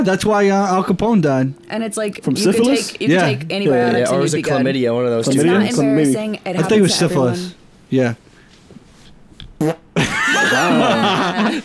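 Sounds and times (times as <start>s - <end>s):
speech: 0.0s - 8.2s, 9.6s - 9.8s, 10.5s - 11.6s
loud fart into a microphone: 9.5s - 10.0s
laughter: 10.0s - 11.6s.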